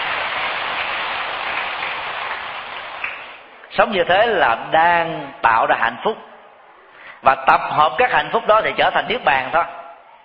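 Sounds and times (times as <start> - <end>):
crowd applauding: 0.0 - 3.7
speech: 3.8 - 6.3, 7.2 - 9.8.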